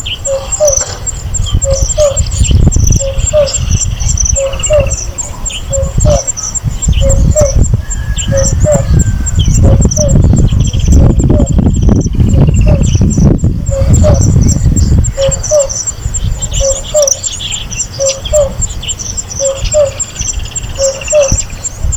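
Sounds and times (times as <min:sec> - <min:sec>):
African cuckoo Cuculus gularis: 0:00.2 - 0:21.9.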